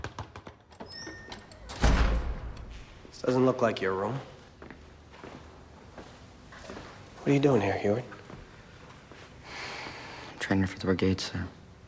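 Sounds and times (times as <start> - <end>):
door opening into a dark gym: 0.4 - 3.1
speech: 3.2 - 4.3, 7.3 - 8.2, 10.5 - 11.6.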